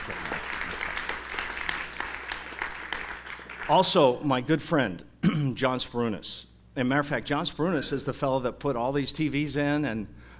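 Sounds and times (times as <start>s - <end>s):
audience clapping at a concert gathering: 0.0s - 4.1s
speech: 3.7s - 10.3s.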